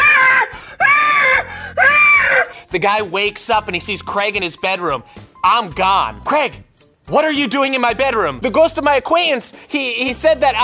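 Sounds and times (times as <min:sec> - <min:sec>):
person imitating a banshee's screech: 0:00.0 - 0:02.6
speech: 0:02.8 - 0:10.6.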